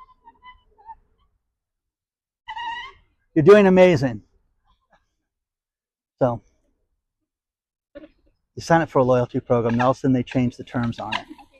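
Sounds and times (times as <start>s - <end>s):
speech: 3.4s - 4.3s, 6.2s - 6.5s, 8.6s - 11.4s
shrill wavering squeal of rollerblade brakes: 11.0s - 11.5s.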